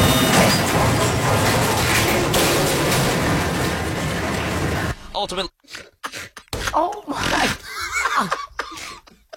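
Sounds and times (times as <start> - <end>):
crane boom collapsing onto a house: 0.0 - 5.0
people talking: 6.7 - 7.6
laughter: 7.4 - 9.3.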